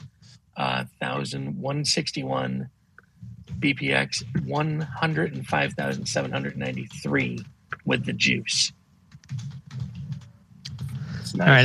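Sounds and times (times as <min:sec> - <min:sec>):
speech: 0:00.6 - 0:02.8, 0:03.6 - 0:09.5, 0:11.3 - 0:11.6
old-style mechanical computer keyboard typing: 0:05.7 - 0:08.4, 0:09.1 - 0:11.0.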